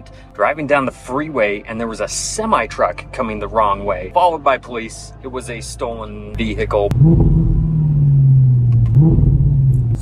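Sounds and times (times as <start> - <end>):
speech: 0.1 - 7.4
2014 Audi R8 facelifted sports car engine rumbling: 4.6 - 10.0.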